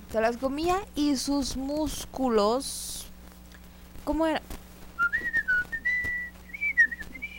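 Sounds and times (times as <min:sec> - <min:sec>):
faint low hum: 0:00.0 - 0:07.3
speech: 0:00.1 - 0:03.1, 0:04.0 - 0:04.6
person whistling a bouncy melodic cartoon theme tune: 0:05.0 - 0:07.3.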